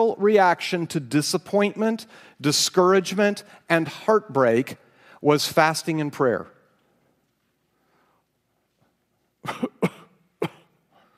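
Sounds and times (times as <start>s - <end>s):
speech: 0.0s - 6.5s, 9.4s - 9.7s
staged cough: 9.4s - 11.1s.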